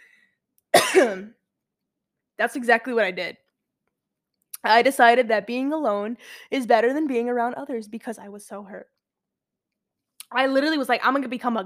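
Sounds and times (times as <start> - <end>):
rough throaty cough: 0.8 - 1.4
speech: 1.0 - 1.4, 2.4 - 3.4, 4.6 - 9.0, 10.3 - 11.6.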